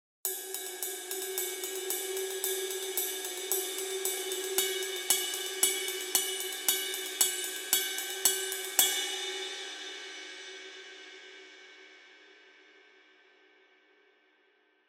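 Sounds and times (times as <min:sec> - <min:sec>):
20-inch ride cymbal: 0:00.3 - 0:10.7.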